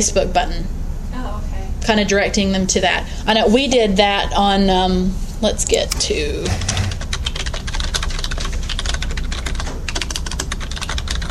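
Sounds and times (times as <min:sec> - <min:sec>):
speech: 0:00.0 - 0:06.8
rapid typing on a computer keyboard: 0:06.6 - 0:11.2.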